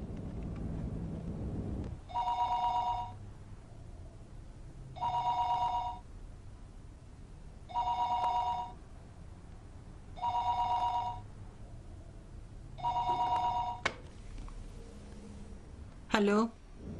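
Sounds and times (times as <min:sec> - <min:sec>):
low hum: 0:00.0 - 0:16.9
phone line ringing tones while calling a home number: 0:02.1 - 0:03.2, 0:05.0 - 0:06.0, 0:07.7 - 0:08.8, 0:10.2 - 0:11.3, 0:12.8 - 0:13.8
speech: 0:16.2 - 0:16.6.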